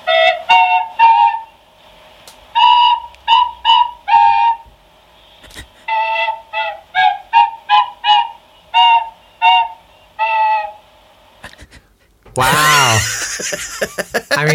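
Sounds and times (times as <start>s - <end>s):
tin whistle played by nose: 0.0s - 1.6s, 2.5s - 4.7s, 5.9s - 10.9s
laughter: 12.4s - 14.5s
speech: 13.5s - 14.5s.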